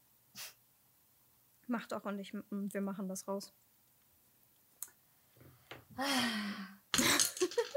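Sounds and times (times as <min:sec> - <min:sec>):
speech: 0:01.7 - 0:03.7
pen falling onto the floor: 0:06.9 - 0:07.7.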